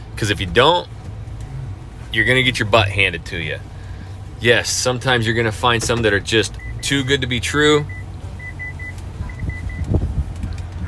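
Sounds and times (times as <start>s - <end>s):
truck engine idling rumble inside the cab: 0.0s - 10.8s
speech: 0.2s - 1.0s, 2.1s - 3.7s, 4.4s - 8.0s
truck alert chime beeping in the cab: 6.5s - 9.9s.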